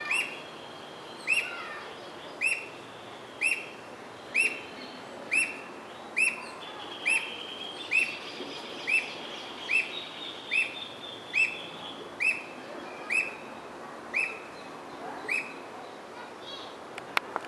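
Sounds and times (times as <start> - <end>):
alma de gato bird: 0.0 - 15.7.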